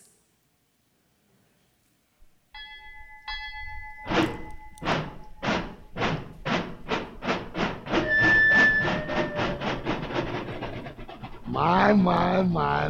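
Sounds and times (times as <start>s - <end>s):
jazz band imitating a steam train: 4.1s - 12.8s
speech: 11.6s - 12.8s.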